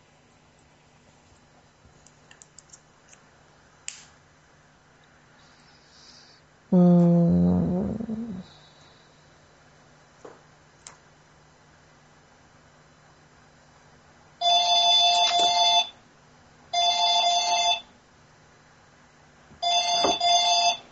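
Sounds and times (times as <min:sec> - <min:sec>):
quiet hum: 0:00.0 - 0:20.9
telephone ringing in electronic bursts: 0:14.4 - 0:16.0, 0:16.7 - 0:17.9, 0:19.6 - 0:20.9.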